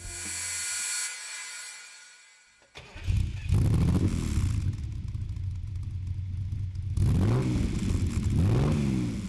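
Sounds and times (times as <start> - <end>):
1987 Lamborghini Countach 5000 Quattrovalvole V12 engine cranking and firing up: 2.7 - 9.2
Lamborghini V12 four-valve engine revving with loud rasping exhaust note: 2.8 - 4.9, 7.0 - 9.2.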